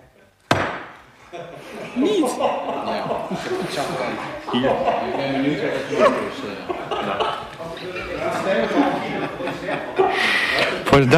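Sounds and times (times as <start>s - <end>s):
gavel striking an iPad: 0.5s - 1.0s
laughter: 1.2s - 11.0s
speech: 1.3s - 11.1s.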